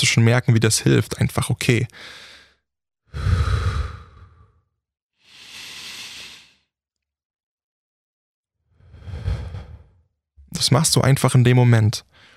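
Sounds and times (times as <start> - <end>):
speech: 0.0 - 2.3, 3.1 - 3.6, 10.6 - 12.3
slow deep conscious breathing: 2.0 - 4.6, 5.2 - 6.7, 8.7 - 10.0.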